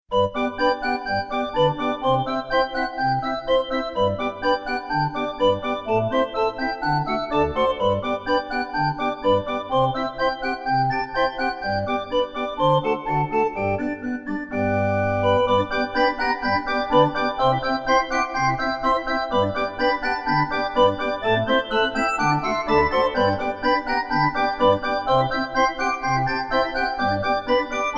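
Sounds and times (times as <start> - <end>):
pipe organ: 0.2 - 27.9.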